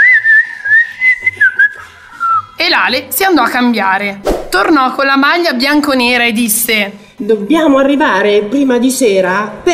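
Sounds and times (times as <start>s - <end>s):
lively whistling of a bright wavering melody: 0.0s - 2.6s
speech: 2.8s - 9.7s.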